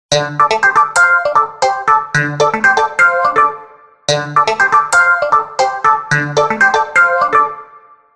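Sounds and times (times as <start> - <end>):
Windows Mobile phone ringtone: 0.1 - 8.0.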